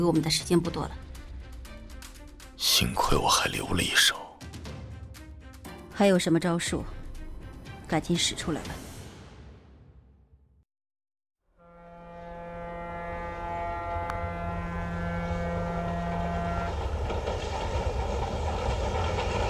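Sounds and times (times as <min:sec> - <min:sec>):
speech: 0:00.0 - 0:01.1, 0:02.6 - 0:04.2, 0:06.0 - 0:07.0, 0:07.9 - 0:08.9
loud steady train horn blaring: 0:11.5 - 0:17.8
train rumbling and hissing while pulling into a station: 0:14.2 - 0:19.4.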